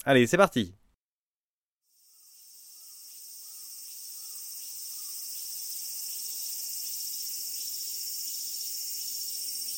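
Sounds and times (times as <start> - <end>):
speech: 0.0 - 0.8
cicada song from Japan: 1.9 - 9.7.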